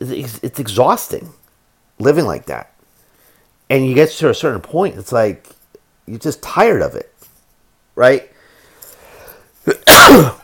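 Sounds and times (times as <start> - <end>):
speech: 0.0 - 1.4, 2.0 - 2.7, 3.7 - 7.1, 8.0 - 8.3, 9.6 - 10.4
sneeze: 9.7 - 10.4.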